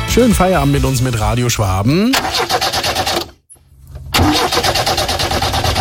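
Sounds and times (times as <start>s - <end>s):
speech: 0.2s - 2.7s
car engine starting: 2.1s - 5.7s.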